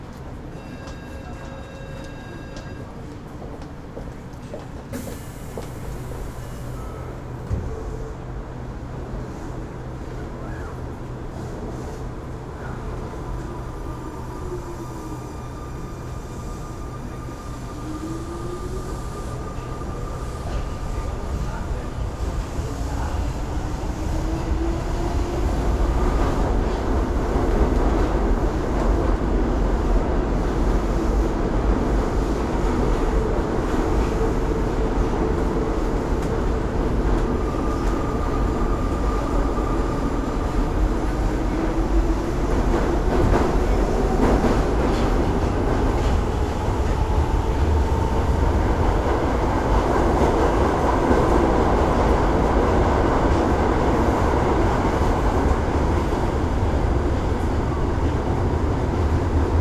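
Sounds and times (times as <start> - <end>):
urban and suburban train ride: 0.0 - 59.6.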